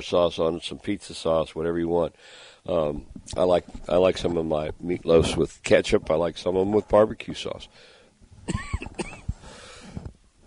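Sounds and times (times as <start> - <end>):
speech: 0.0 - 7.9, 8.5 - 9.1
person coughing uncontrollably: 8.5 - 9.3.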